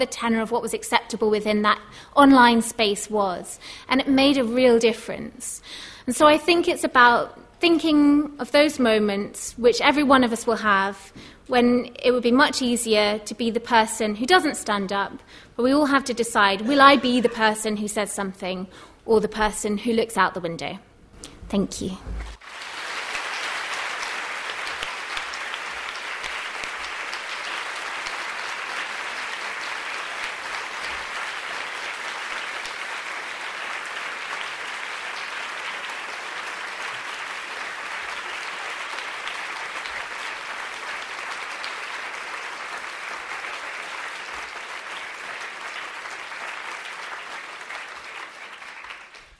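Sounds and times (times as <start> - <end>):
speech: 0.0 - 20.9, 21.5 - 22.4
large audience applause after a lecture: 22.3 - 49.3.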